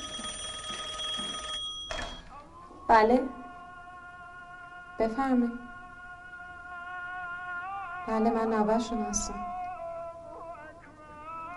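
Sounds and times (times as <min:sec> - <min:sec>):
telephone bell ringing: 0:00.0 - 0:02.3
speech: 0:02.9 - 0:03.4, 0:05.0 - 0:05.7, 0:08.1 - 0:09.5.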